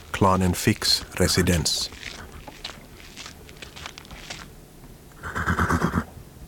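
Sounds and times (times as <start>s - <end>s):
rustling in a meadow: 0.0s - 5.2s
soft hoof steps on the ground: 0.0s - 5.2s
speech: 0.2s - 2.2s
horse whinnying in a meadow: 5.2s - 6.1s.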